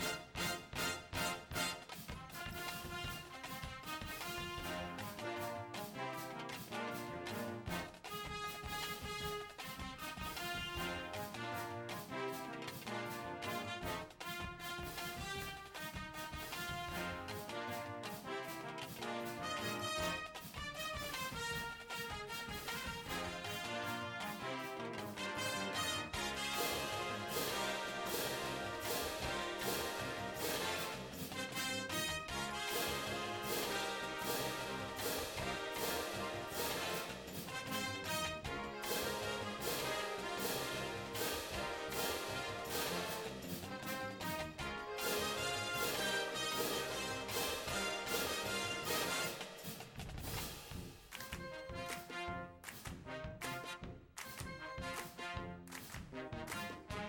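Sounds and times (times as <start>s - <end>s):
drumline playing: 0.0s - 57.0s
drumline cymbals crashing: 26.2s - 32.0s, 32.7s - 38.2s, 38.8s - 43.6s, 45.1s - 50.0s.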